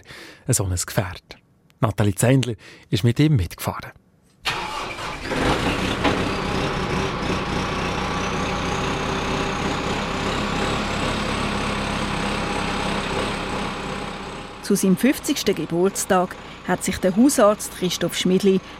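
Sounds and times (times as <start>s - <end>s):
speech: 0.1s - 4.0s, 14.7s - 18.7s
orange tractor engine cranking and idling: 4.5s - 18.7s.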